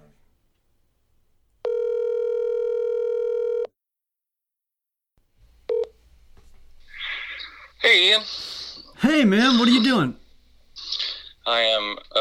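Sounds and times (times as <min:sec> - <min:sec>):
outgoing phone call ringback tone: 0:01.6 - 0:03.7
speech: 0:08.0 - 0:10.2, 0:11.5 - 0:12.1.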